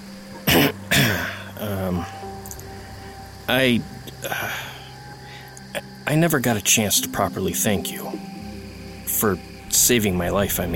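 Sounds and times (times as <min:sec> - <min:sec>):
man clearing his throat: 0:00.5 - 0:01.4
speech: 0:01.6 - 0:02.6, 0:03.5 - 0:04.6, 0:06.1 - 0:08.2, 0:09.2 - 0:10.7.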